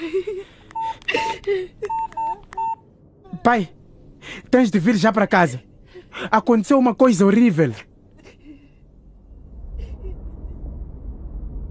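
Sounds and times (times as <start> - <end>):
touch-tone beeps of a telephone number being dialed: 1.9 - 2.8
speech: 3.4 - 3.8, 4.4 - 7.9.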